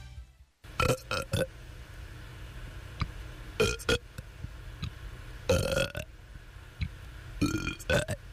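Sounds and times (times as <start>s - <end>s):
person burping loudly and wetly: 0.8s - 1.5s, 3.6s - 4.0s, 5.5s - 6.1s, 7.4s - 8.2s.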